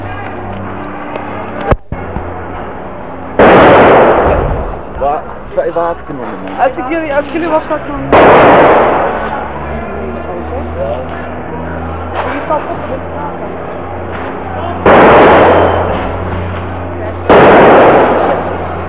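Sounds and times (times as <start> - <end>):
murmuring crowd voices: 0.0 - 18.8
steady low engine rumble: 0.0 - 18.8
loud sharp blasts of strike-ignited firecrackers crackling: 3.4 - 5.1, 8.0 - 9.5, 14.1 - 18.8
speech: 5.8 - 9.0.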